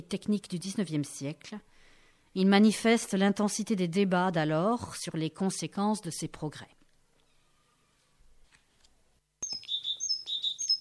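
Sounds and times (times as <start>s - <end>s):
speech: 0.0s - 1.7s, 2.3s - 6.8s
great tit singing: 9.4s - 10.8s.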